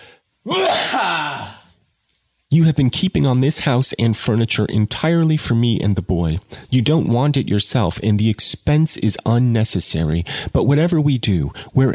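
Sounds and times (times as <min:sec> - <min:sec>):
loud sneeze with a voiced drawn-out tail: 0:00.4 - 0:01.7
speech: 0:02.5 - 0:11.9.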